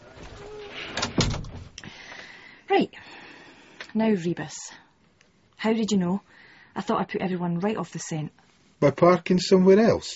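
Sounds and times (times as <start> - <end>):
door being shut at a police station: 0.9 - 1.7
speech: 4.0 - 4.8, 5.6 - 10.1.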